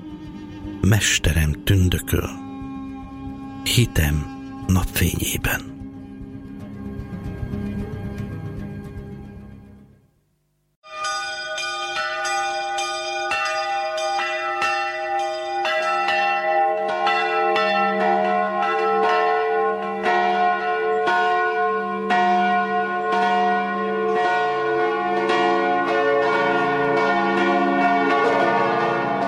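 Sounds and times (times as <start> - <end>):
large church bells pealing: 0.8 - 2.4, 3.6 - 5.6, 10.9 - 29.2
speech: 0.8 - 2.4, 3.6 - 5.7.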